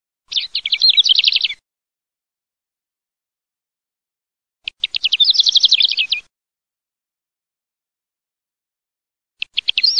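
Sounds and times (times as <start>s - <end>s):
Calandrella lark bird song: 0.3s - 1.6s, 4.6s - 6.3s, 9.4s - 9.9s.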